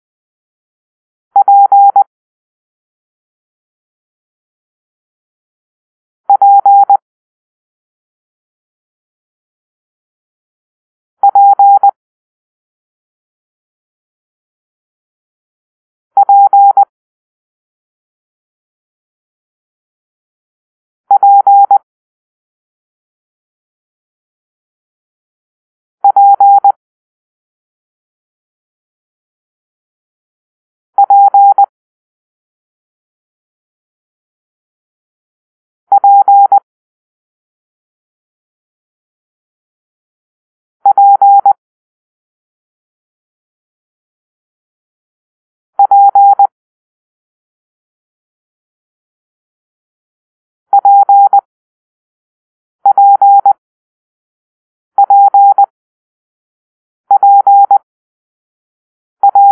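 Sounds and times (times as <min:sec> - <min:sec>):
morse code beeps for letter P: 0:01.4 - 0:02.1, 0:06.3 - 0:07.0, 0:11.2 - 0:11.9, 0:16.2 - 0:16.9, 0:21.2 - 0:21.8, 0:26.0 - 0:26.8, 0:31.0 - 0:31.7, 0:36.0 - 0:36.6, 0:40.8 - 0:41.6, 0:45.8 - 0:46.5, 0:50.7 - 0:51.5, 0:52.8 - 0:53.6, 0:55.0 - 0:55.7, 0:57.1 - 0:57.8, 0:59.2 - 0:59.5.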